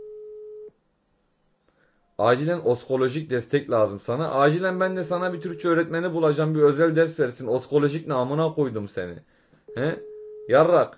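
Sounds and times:
telephone call tone: 0:00.0 - 0:00.7, 0:09.7 - 0:10.6
speech: 0:02.2 - 0:10.9.

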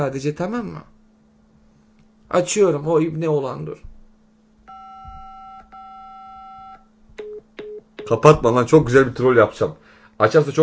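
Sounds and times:
speech: 0:00.0 - 0:01.0, 0:02.3 - 0:03.9, 0:08.1 - 0:10.6
telephone call tone beeps: 0:04.7 - 0:08.1.

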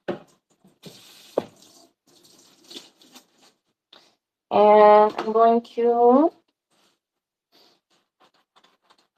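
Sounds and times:
water running from a tap onto a sponge: 0:00.5 - 0:03.6
soft drips: 0:00.6 - 0:03.6
wet squishes of sponge: 0:00.6 - 0:03.7
speech: 0:04.5 - 0:06.4.

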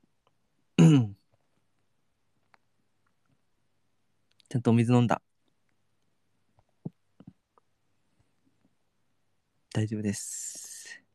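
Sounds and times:
throat-clearing cough after choking: 0:00.8 - 0:01.2
speech: 0:04.5 - 0:05.3, 0:09.8 - 0:10.6.

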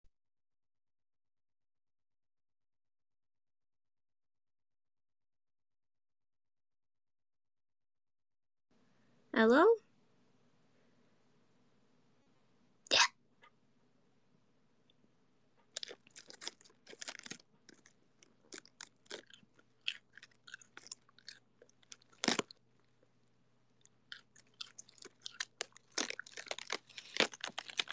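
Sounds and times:
speech: 0:09.3 - 0:09.9
person chewing cold crisp lettuce: 0:15.7 - 0:23.1, 0:23.8 - 0:27.9.

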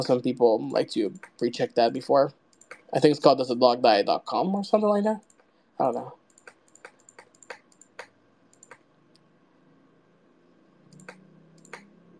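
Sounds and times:
speech: 0:00.0 - 0:06.2
keystrokes on a computer keyboard: 0:01.1 - 0:01.6, 0:02.5 - 0:03.0, 0:06.3 - 0:09.2, 0:10.9 - 0:12.1.

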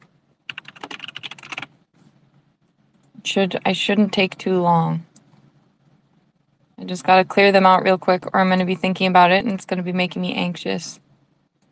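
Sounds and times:
computer keyboard typing: 0:00.0 - 0:01.7
speech: 0:03.2 - 0:05.1, 0:06.9 - 0:11.0.

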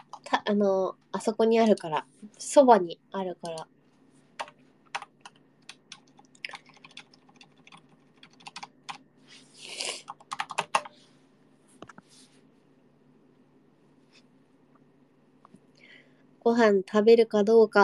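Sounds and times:
speech: 0:00.5 - 0:03.8, 0:16.4 - 0:17.8
typing on a computer keyboard: 0:03.4 - 0:03.7, 0:04.4 - 0:09.0, 0:10.1 - 0:10.9.

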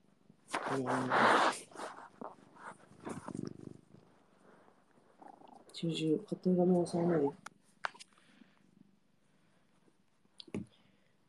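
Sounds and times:
cat purring: 0:00.6 - 0:07.6
speech: 0:00.7 - 0:01.7, 0:05.8 - 0:07.4.

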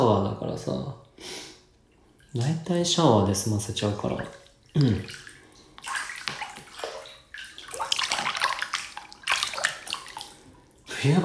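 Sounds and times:
speech: 0:00.2 - 0:01.4, 0:02.3 - 0:06.0, 0:11.0 - 0:11.2
water pouring into a bathtub being filled for a bath: 0:03.2 - 0:11.2.

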